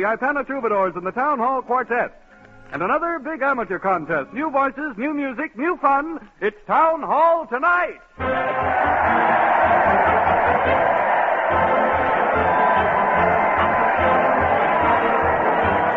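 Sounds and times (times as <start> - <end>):
speech: 0.0 - 8.9
large crowd cheering at a parade: 8.2 - 15.9.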